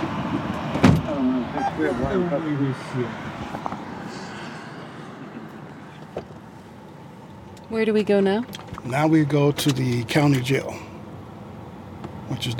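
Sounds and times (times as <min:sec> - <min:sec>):
car door thudding shut: 0:00.7 - 0:01.2
speech: 0:01.8 - 0:03.4, 0:07.7 - 0:10.8, 0:12.4 - 0:12.5.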